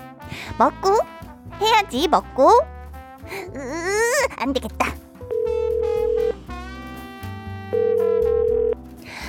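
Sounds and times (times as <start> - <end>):
music: 0.0 - 9.2
speech: 0.3 - 5.0
phone ringback tone while a call is being placed: 5.3 - 6.4, 7.8 - 8.8.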